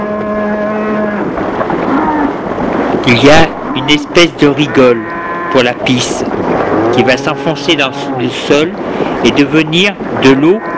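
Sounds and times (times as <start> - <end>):
cow mooing in a barn: 0.0 - 2.4, 3.5 - 8.8, 10.2 - 10.7
speech: 3.1 - 10.7.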